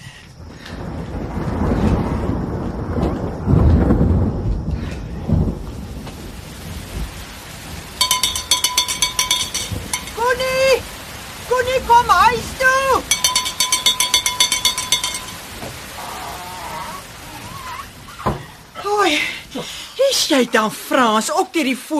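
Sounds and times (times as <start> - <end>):
steady rain: 0.0 - 21.9
deep rolling thunder: 0.4 - 19.9
bright repeated chirping tones: 8.0 - 10.2, 13.1 - 15.6
speech: 20.4 - 21.9.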